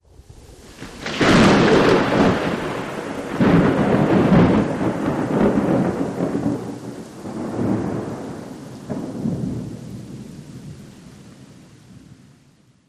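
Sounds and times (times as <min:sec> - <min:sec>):
thunder crack rolling: 0:00.6 - 0:09.8.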